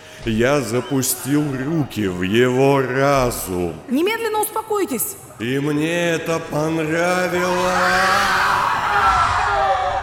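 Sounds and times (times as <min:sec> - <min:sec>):
speech: 0:00.2 - 0:08.6
patients screaming and wailing in a hall of a psychiatric ward: 0:07.5 - 0:10.0.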